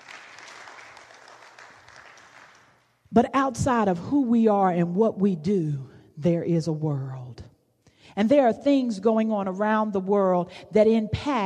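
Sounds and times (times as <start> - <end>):
audience applause with many hands clapping: 0.0 - 2.7
speech: 3.2 - 7.4, 8.2 - 11.4.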